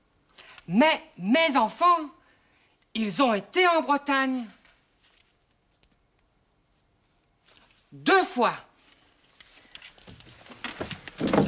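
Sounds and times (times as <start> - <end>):
speech: 0.7 - 2.2, 3.0 - 4.6, 7.9 - 8.7
wooden chair creaking, snapping and splintering as it gives way: 10.6 - 11.4.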